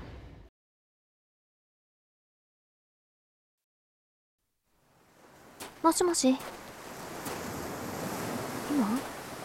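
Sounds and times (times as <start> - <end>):
ocean surf breaking against a seashore: 4.8 - 9.4
speech: 5.8 - 6.6.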